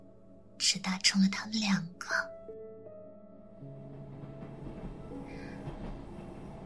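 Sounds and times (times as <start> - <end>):
speech: 0.6 - 2.4
train slowly pulling out: 3.6 - 6.6.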